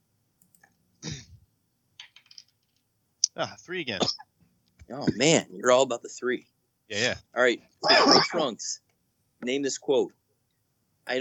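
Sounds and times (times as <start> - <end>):
dice tumbling and settling on a table: 2.0 - 2.9
speech: 3.4 - 4.3, 4.9 - 8.8, 9.4 - 10.2.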